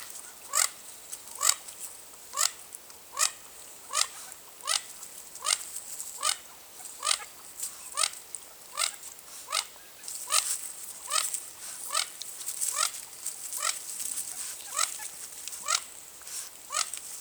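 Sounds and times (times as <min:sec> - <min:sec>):
mandarin duck Aix galericulata calling: 0:00.3 - 0:00.8, 0:01.4 - 0:01.6, 0:02.3 - 0:11.3, 0:11.9 - 0:13.0, 0:13.6 - 0:15.9, 0:16.7 - 0:17.1.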